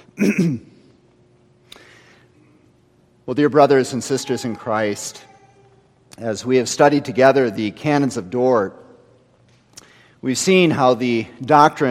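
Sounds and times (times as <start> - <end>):
person clearing throat from a tickle in the throat: 0.0 - 0.8
speech: 0.2 - 0.7, 3.3 - 5.3, 6.2 - 8.8, 10.2 - 11.8.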